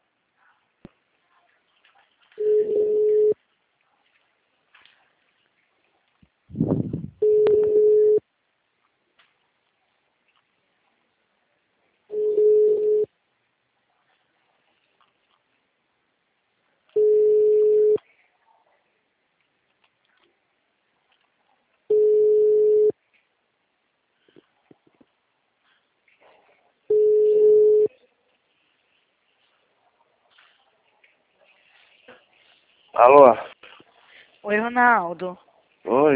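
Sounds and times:
telephone ringback tone on an outgoing call: 2.4 - 3.4, 7.2 - 8.2, 12.1 - 13.1, 17.0 - 18.0, 21.9 - 22.9, 26.9 - 27.9
speech: 33.0 - 33.5, 34.4 - 36.1.

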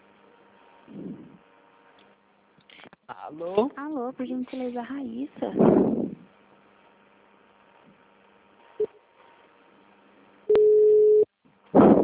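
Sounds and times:
speech: 3.3 - 6.2
telephone ringing tone beep as the line calls again after a dropped call: 10.5 - 11.3.

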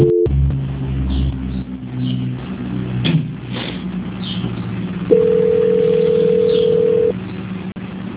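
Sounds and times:
telephone tone while a call is transferred: 0.0 - 0.3, 5.1 - 7.2
low hum: 0.0 - 8.1.

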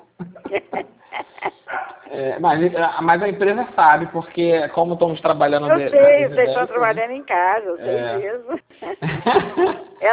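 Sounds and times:
laughter: 0.2 - 2.3, 7.8 - 10.0
dog barking during a call recorded while working from home: 1.7 - 2.0
speech: 2.2 - 10.1.

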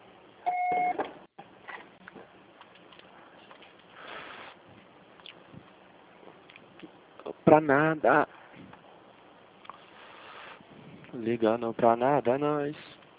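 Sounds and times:
low hiss of line noise: 0.0 - 13.1
electronic voicemail beep signalling start of recording: 0.5 - 1.0
speech: 7.5 - 8.4, 11.2 - 13.0.

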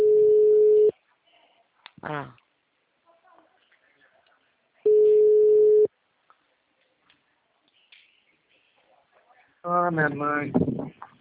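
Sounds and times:
steady telephone tone after a dropped call: 0.0 - 0.9, 4.9 - 5.9
speech: 2.0 - 2.4, 9.9 - 11.1.

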